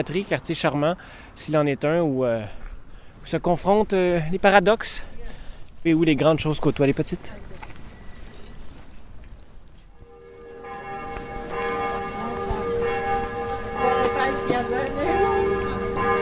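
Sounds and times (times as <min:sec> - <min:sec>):
speech: 0:00.0 - 0:02.6, 0:03.2 - 0:05.1, 0:05.8 - 0:07.5
church bell ringing: 0:10.0 - 0:16.2.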